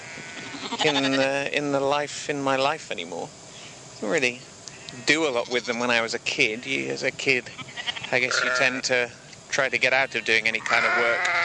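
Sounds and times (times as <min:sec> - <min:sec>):
sheep bleating on a farm: 0:00.0 - 0:01.4, 0:07.5 - 0:08.9, 0:10.2 - 0:11.4
speech: 0:00.8 - 0:03.4, 0:04.0 - 0:11.4.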